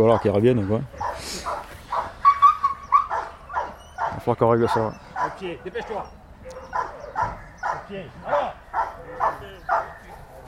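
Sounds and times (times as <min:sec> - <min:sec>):
speech: 0:00.0 - 0:01.5, 0:04.2 - 0:06.8, 0:07.9 - 0:08.6
possessive police dog yipping and whining: 0:01.0 - 0:07.9.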